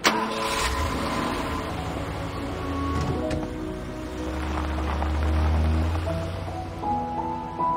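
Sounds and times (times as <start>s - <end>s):
car engine starting and pulling away: 0.0s - 7.7s.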